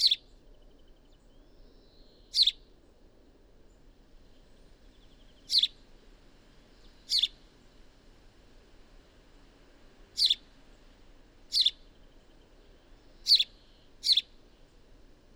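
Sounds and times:
Passer domesticus house sparrow chirping: 0.0 - 0.2, 2.3 - 2.6, 5.0 - 5.8, 7.1 - 7.4, 10.2 - 10.4, 11.5 - 11.8, 13.2 - 14.4.

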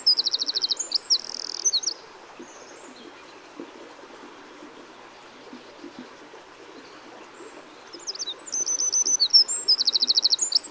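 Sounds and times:
Eurasian wren song, Troglodytes troglodytes: 0.0 - 2.0, 8.0 - 10.6
low background hiss: 0.0 - 10.6.

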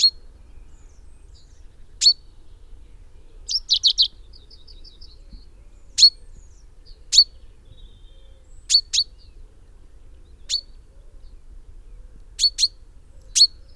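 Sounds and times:
common chaffinch Fringilla coelebs calling: 2.0 - 2.3, 3.5 - 5.1, 5.9 - 6.4, 7.1 - 9.2, 10.4 - 10.8, 12.4 - 13.7.

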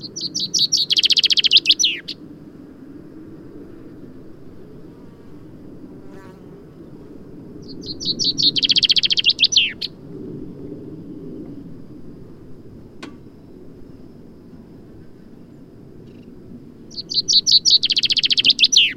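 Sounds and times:
common chaffinch Fringilla coelebs singing: 0.0 - 2.2, 7.6 - 9.9, 16.9 - 18.9.

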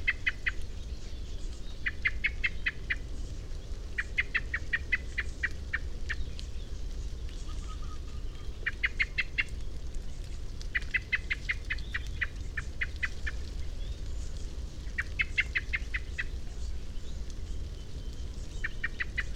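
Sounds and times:
steady low background noise: 0.0 - 19.3
common blackbird Turdus merula chattering: 1.8 - 3.0, 4.0 - 6.2, 7.5 - 9.5, 10.8 - 13.4, 14.9 - 16.3, 18.6 - 19.3.

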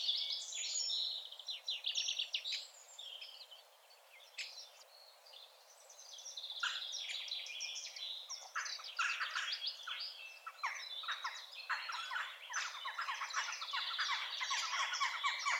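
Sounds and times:
Eurasian wren Troglodytes troglodytes song: 0.0 - 15.5
background hiss: 0.0 - 15.5.

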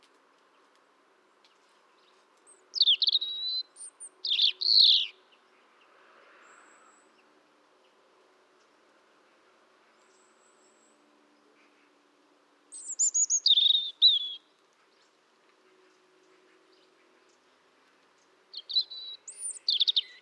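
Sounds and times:
European robin Erithacus rubecula singing: 2.7 - 5.2, 12.7 - 14.5, 18.5 - 20.1.

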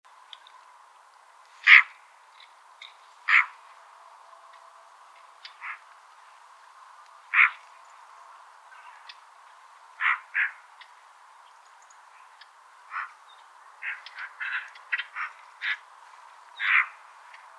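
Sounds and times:
Eurasian magpie (Pica pica) giving harsh rasping calls: 3.3 - 3.6, 7.3 - 7.6, 10.0 - 10.6, 13.8 - 15.8, 16.6 - 17.0.

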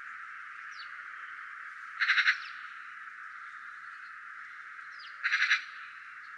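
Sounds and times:
Eurasian magpie chattering: 2.0 - 2.5, 5.2 - 5.8.

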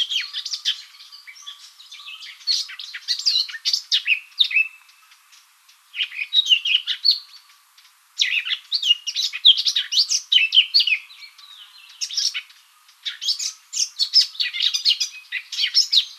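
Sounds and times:
Eurasian blackcap Sylvia atricapilla quick jumbled warbling: 0.0 - 7.6, 8.2 - 16.1.

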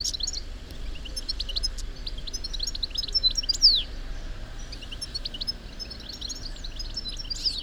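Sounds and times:
European goldfinch calls: 0.0 - 3.9, 4.5 - 7.6
low background rumble: 0.0 - 7.6.

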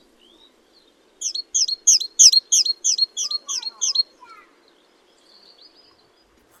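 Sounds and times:
great tit Parus major sharp high two-part calls: 1.2 - 4.5.

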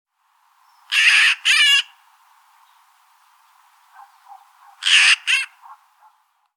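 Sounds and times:
carrion crow Corvus corone cawing: 0.9 - 2.0, 4.0 - 6.2.

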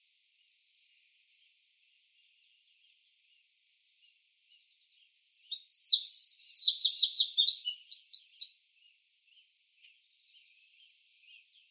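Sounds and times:
Eurasian wren Troglodytes troglodytes singing: 4.5 - 8.6.

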